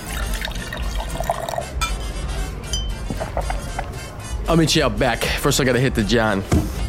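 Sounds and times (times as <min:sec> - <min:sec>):
drink poured into a glass: 0:00.0 - 0:01.8
faint clink of glassware: 0:00.0 - 0:04.0
speech: 0:04.5 - 0:06.7.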